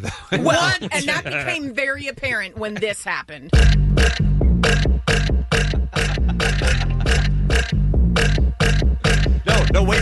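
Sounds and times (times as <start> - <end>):
laughter: 0.0 - 1.8, 2.4 - 3.1, 5.7 - 7.3
speech: 0.0 - 4.2
deep rumbling burps from a played recording: 3.6 - 9.9.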